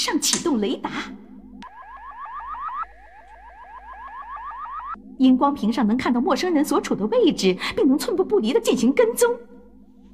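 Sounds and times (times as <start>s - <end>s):
speech: 0.0s - 1.3s, 5.2s - 9.5s
estate intruder alarm system going off: 1.4s - 7.1s.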